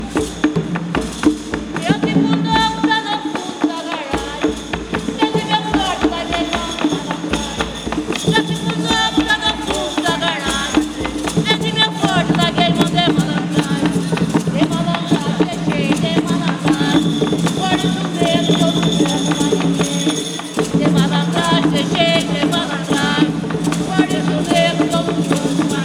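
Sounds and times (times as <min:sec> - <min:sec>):
batuque de umbigada drumming in Capivari: 0:00.0 - 0:25.8.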